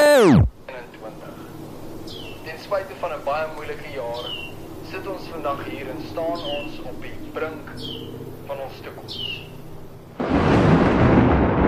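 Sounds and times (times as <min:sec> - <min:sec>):
speech: 0:00.2 - 0:00.6, 0:03.0 - 0:09.6
thunder clap and rumble: 0:10.2 - 0:11.6.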